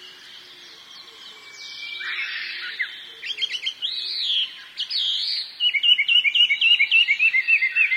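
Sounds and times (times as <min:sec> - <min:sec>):
Chinese hwamei whistled song: 0:00.0 - 0:07.9.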